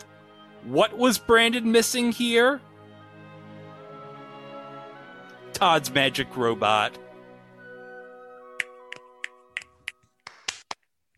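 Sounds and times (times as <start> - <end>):
speech: 0.6 - 2.7, 5.6 - 7.0
finger snapping: 8.6 - 10.8.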